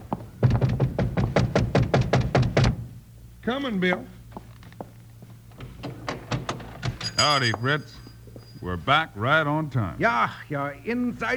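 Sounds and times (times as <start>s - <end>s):
knuckles knocking on a locked wooden door: 0.1s - 2.9s
speech: 3.5s - 4.2s, 7.2s - 8.0s, 8.6s - 11.3s.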